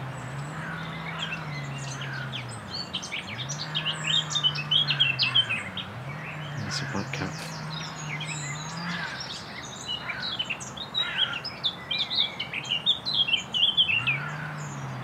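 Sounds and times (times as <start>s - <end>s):
northern nightingale singing in a scrubby thicket by a stile: 0.0s - 15.0s
low chainsaw drone: 6.4s - 9.2s.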